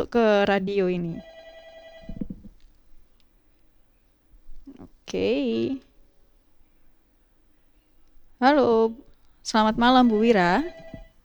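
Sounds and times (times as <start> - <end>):
speech: 0.0 - 1.3, 4.8 - 5.9, 8.4 - 10.8
electronic telephone ringtone for an incoming call: 1.2 - 2.3, 10.0 - 11.2.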